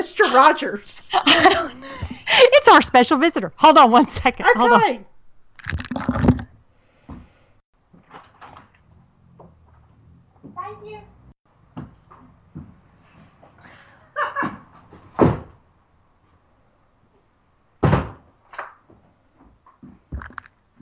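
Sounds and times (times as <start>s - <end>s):
speech: 0.0s - 6.5s
laughter: 1.0s - 2.2s, 14.1s - 14.6s
door opened and shut for a delivery person: 14.4s - 15.6s, 17.8s - 18.3s.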